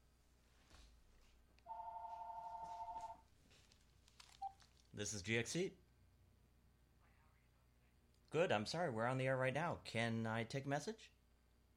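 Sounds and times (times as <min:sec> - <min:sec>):
electronic telephone ring with warbling two-tone trill: 0:01.7 - 0:03.2
speech: 0:05.0 - 0:05.8, 0:08.3 - 0:11.2.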